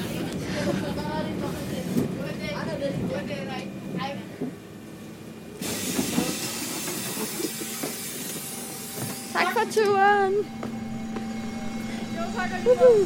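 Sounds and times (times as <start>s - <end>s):
bus engine rumbling while pulling to a stop in Rønne: 0.0s - 13.0s
air hiss from bus brakes or doors: 5.6s - 9.0s
speech: 9.8s - 10.8s, 12.2s - 13.0s.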